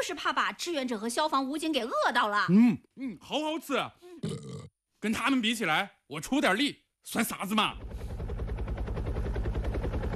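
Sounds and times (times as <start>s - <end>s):
speech: 0.0s - 8.0s
firefighting helicopter rotor chopping while carrying water to a blaze: 7.2s - 10.1s.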